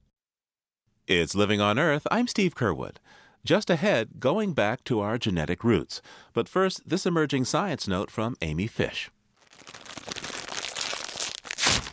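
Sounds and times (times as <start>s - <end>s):
speech: 1.1s - 9.7s
crunching salt and vinegar potato chips: 9.4s - 11.9s.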